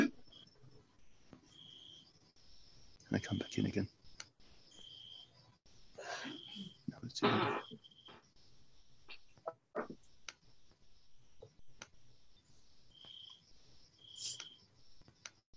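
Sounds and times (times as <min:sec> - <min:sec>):
crickets chirping over a video call: 0:00.0 - 0:15.4
speech: 0:03.2 - 0:04.0, 0:07.1 - 0:07.9
scattered clicks: 0:03.6 - 0:04.4, 0:09.4 - 0:10.8, 0:11.7 - 0:12.0, 0:14.2 - 0:15.4.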